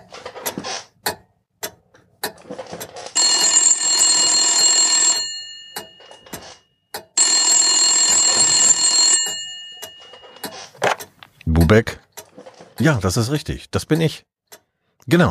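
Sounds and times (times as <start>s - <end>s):
telephone ringing with an incoming call in an office: 3.0s - 10.7s
speech: 11.7s - 12.0s, 12.8s - 14.3s, 15.1s - 15.2s.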